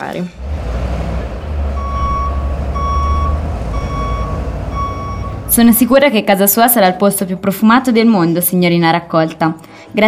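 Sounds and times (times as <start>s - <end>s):
speech: 0.0s - 0.4s, 5.6s - 10.0s
garbage truck diesel engine idling: 0.0s - 6.0s
garbage truck reversing alarm beeps: 1.7s - 5.8s.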